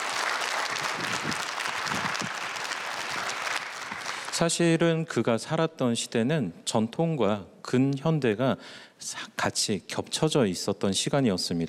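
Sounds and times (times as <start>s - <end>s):
audience applause of many hands clapping: 0.0s - 4.4s
speech: 4.4s - 11.6s.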